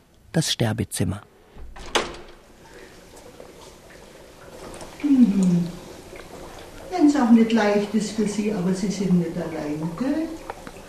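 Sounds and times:
speech: 0:00.4 - 0:01.9, 0:07.2 - 0:10.4
door opening with latch click: 0:01.7 - 0:02.4.

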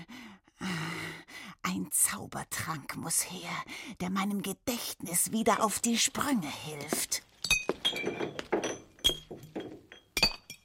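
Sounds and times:
speech: 0:01.8 - 0:07.3
empty green glass bottle clinking: 0:07.4 - 0:10.6.

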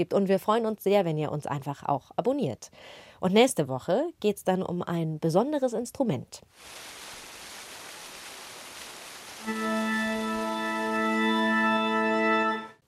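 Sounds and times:
speech: 0:00.0 - 0:07.0, 0:09.4 - 0:10.0
fountain water rushing and splashing: 0:06.6 - 0:10.8
16th-century water organ chord in a fountain: 0:09.4 - 0:12.8.

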